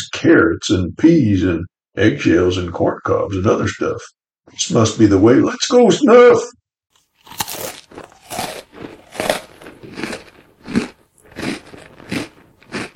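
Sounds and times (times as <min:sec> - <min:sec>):
speech: 0:00.2 - 0:06.6
munching and crunching on a pumpkin: 0:07.0 - 0:12.9.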